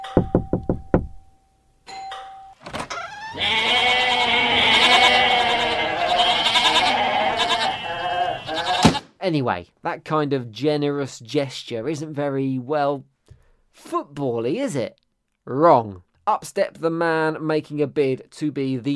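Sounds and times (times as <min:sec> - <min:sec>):
knocking on a door: 0:00.0 - 0:01.3
many goats bleating together: 0:03.0 - 0:09.0
speech: 0:09.3 - 0:13.1, 0:13.8 - 0:18.9.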